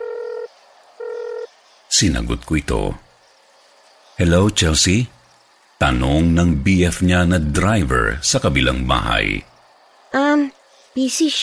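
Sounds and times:
cellphone ringing in a steady electronic tone: 0:00.0 - 0:01.5
speech: 0:01.9 - 0:03.0, 0:04.2 - 0:05.2, 0:05.8 - 0:09.5, 0:11.0 - 0:11.4.

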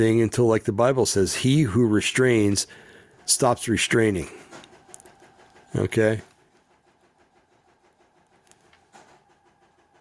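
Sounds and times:
speech: 0:00.0 - 0:04.4, 0:05.7 - 0:06.3
sewing machine running in another room: 0:03.1 - 0:09.9.

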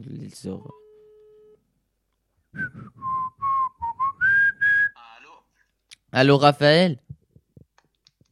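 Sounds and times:
speech: 0:00.0 - 0:00.8, 0:06.1 - 0:07.0
outgoing telephone call ringing tone: 0:00.6 - 0:01.6
whistled melody: 0:02.6 - 0:04.9.

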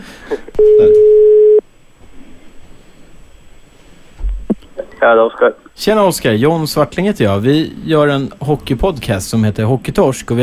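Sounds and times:
low noise: 0:00.0 - 0:10.4
telephone ringback tone while placing a call to a hockey player: 0:00.6 - 0:01.6
speech: 0:05.0 - 0:10.4.

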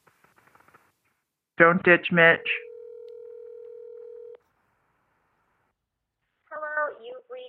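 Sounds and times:
speech: 0:01.6 - 0:02.6
telephone ringing tone from an outgoing phone call: 0:02.4 - 0:04.4.

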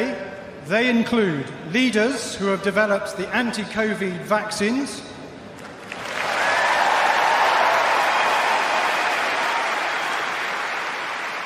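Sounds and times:
speech: 0:00.7 - 0:05.1
crowd cheering and applauding at a tennis court: 0:05.6 - 0:11.4.

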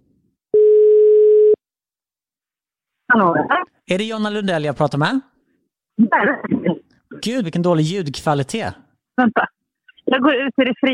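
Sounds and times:
telephone ringback tone while placing a call: 0:00.6 - 0:01.6
speech: 0:03.1 - 0:05.3, 0:06.0 - 0:10.9.

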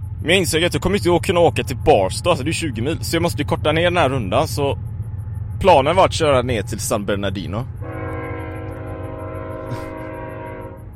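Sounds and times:
low rumble of a passing train: 0:00.0 - 0:10.9
speech: 0:00.2 - 0:04.9, 0:05.6 - 0:07.8
train horn blast: 0:07.8 - 0:10.9.

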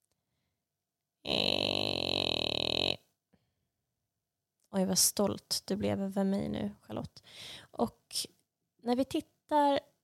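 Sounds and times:
voice imitating an advent calendar door opening: 0:01.2 - 0:03.1
speech: 0:04.8 - 0:09.9.

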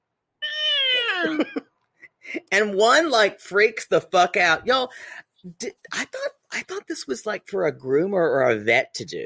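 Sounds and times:
cat meowing while its claws are clipped: 0:00.4 - 0:01.3
speech: 0:01.2 - 0:01.6, 0:02.5 - 0:09.2.

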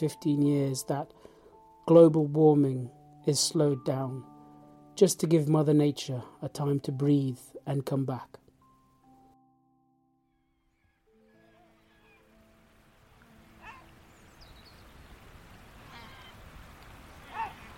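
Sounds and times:
speech: 0:00.0 - 0:01.3, 0:01.9 - 0:04.3, 0:05.0 - 0:08.4
black-backed gull barking calls: 0:10.4 - 0:12.3, 0:13.6 - 0:14.0, 0:15.8 - 0:16.5, 0:17.1 - 0:17.7
surf: 0:14.9 - 0:17.7.

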